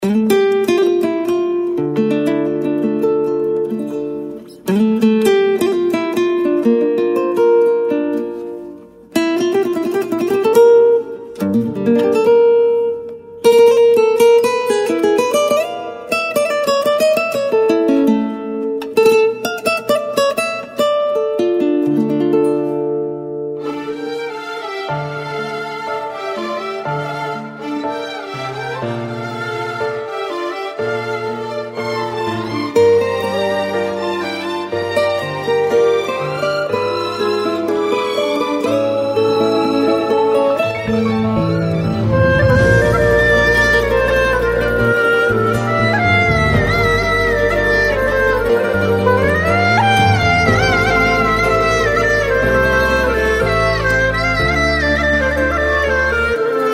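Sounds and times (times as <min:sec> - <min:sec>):
classical guitar: 0:00.0 - 0:56.7.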